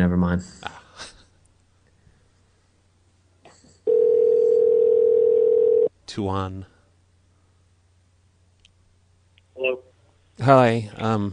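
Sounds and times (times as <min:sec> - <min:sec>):
speech: 0:00.0 - 0:01.1, 0:06.1 - 0:06.7, 0:10.4 - 0:11.3
telephone dial tone for a phone call: 0:03.9 - 0:05.9.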